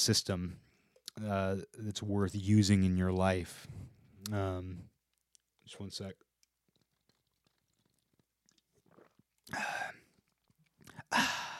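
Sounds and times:
speech: 0:00.0 - 0:04.9, 0:05.7 - 0:06.2, 0:09.5 - 0:10.0
sipping a drink and mouth sounds: 0:04.2 - 0:11.5
satisfied breathy ahh exhale: 0:11.1 - 0:11.5.

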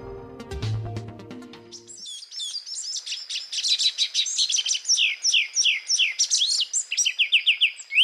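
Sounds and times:
low musical sound: 0:00.0 - 0:01.9
ochre-breasted tanager singing: 0:01.7 - 0:08.0.

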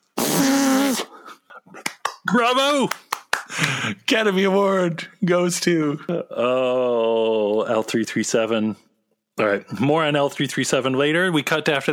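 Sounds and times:
mouth imitation of a fart: 0:00.1 - 0:01.1
speech: 0:02.3 - 0:03.0, 0:03.6 - 0:11.9.

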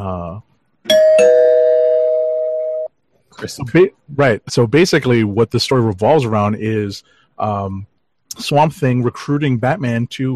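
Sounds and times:
speech: 0:00.0 - 0:01.6, 0:03.4 - 0:10.3
bright bell ringing: 0:00.9 - 0:02.9.

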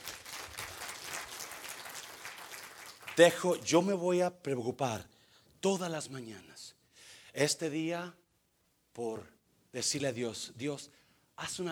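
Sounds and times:
audience applauding: 0:00.0 - 0:03.5
speech: 0:03.2 - 0:06.8, 0:07.4 - 0:08.2, 0:09.0 - 0:11.7.

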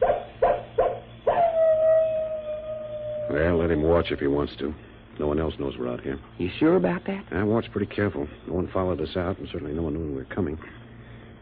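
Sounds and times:
wolf yelping barks: 0:00.0 - 0:02.6
wolf howling: 0:01.2 - 0:04.6
speech: 0:03.4 - 0:10.8.

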